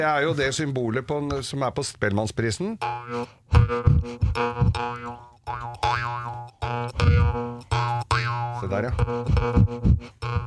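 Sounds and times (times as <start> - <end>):
speech: 0.0 - 6.1, 8.7 - 10.4
jaw harp twanging: 2.8 - 10.4.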